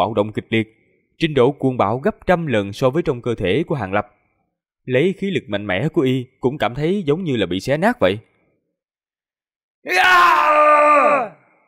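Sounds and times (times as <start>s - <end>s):
speech: 0.0s - 4.2s, 4.8s - 8.3s, 9.8s - 10.5s
man letting out a loud strained shout: 9.9s - 11.4s.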